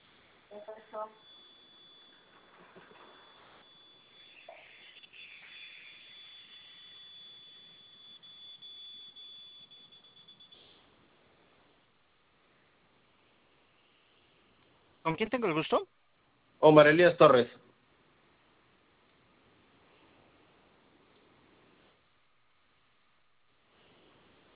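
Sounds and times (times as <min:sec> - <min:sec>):
alarm beeping in short shrill bursts: 0:00.0 - 0:10.9
speech: 0:00.5 - 0:01.4, 0:15.1 - 0:16.0, 0:16.6 - 0:17.6.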